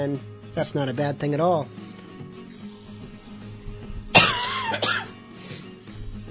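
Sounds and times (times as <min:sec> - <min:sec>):
speech: 0:00.0 - 0:01.8, 0:04.7 - 0:04.9
person clearing throat: 0:04.1 - 0:05.2
person coughing: 0:04.1 - 0:05.2.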